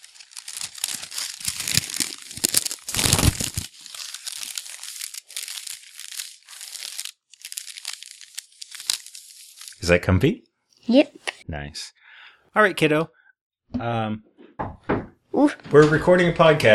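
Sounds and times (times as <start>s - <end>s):
crepe paper crown crinkling and rustling as it is handled: 0.0s - 9.8s
speech: 9.9s - 14.7s, 15.4s - 16.7s.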